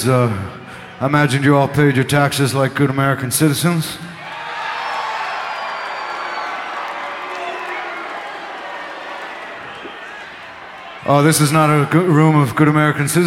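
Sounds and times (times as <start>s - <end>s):
speech: 0.0s - 4.2s, 11.1s - 13.2s
large audience booing: 4.2s - 11.9s.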